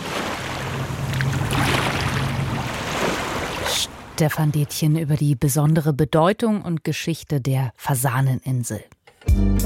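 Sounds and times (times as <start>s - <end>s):
Bidassoa river water flowing toward the sea past Pheasant Island: 0.0s - 4.2s
speech: 4.2s - 9.6s.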